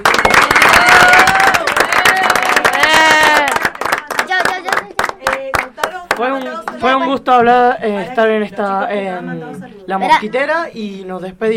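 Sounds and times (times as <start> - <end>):
speech: 0.0 - 0.5, 7.3 - 11.5
people cheering: 0.0 - 5.6
audience applause: 0.0 - 6.9.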